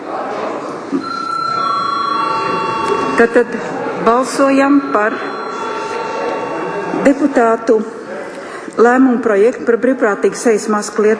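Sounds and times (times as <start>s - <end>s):
dense room noise: 0.0s - 9.7s
electric voting bell ringing in a council session: 1.0s - 7.6s
speech: 3.2s - 5.4s, 7.0s - 8.0s, 8.8s - 11.1s.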